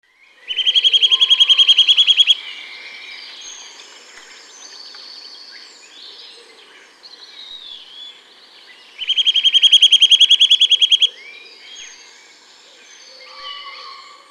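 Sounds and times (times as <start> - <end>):
bird giving a loud rapid even trill: 0.5 - 2.4, 9.0 - 11.2.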